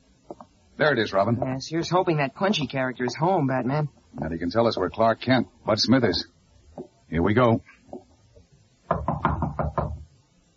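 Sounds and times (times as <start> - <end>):
speech: 0.8 - 7.8
firm knocking on a room door: 8.8 - 10.1.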